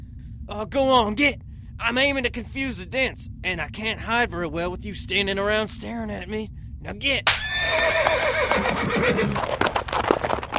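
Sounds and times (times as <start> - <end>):
speech: 0.5 - 10.2
horse neighing: 7.4 - 9.6
horse hooves clip-clopping: 7.6 - 10.5.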